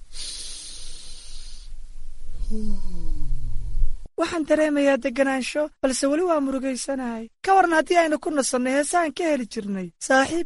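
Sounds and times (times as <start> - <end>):
deep breath during a guided calming exercise: 0.0 - 3.8
low tone: 1.9 - 4.1
speech: 2.5 - 3.1, 4.2 - 10.4.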